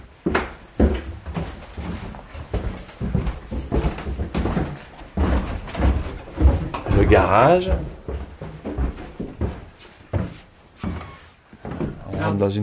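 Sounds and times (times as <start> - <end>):
heavy thuds and clunks: 2.5 - 12.3
house door opening onto a stairway: 2.8 - 7.3, 10.8 - 12.3
speech: 7.0 - 8.0, 12.4 - 12.6.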